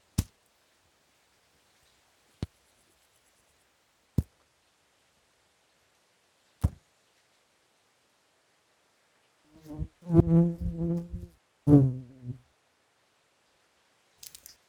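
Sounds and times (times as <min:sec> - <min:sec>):
pond insects buzzing: 0:09.6 - 0:12.4.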